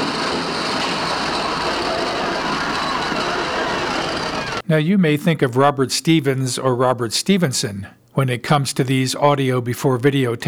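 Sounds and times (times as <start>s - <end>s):
subway train rumbling: 0.0s - 4.6s
speech: 4.7s - 10.4s.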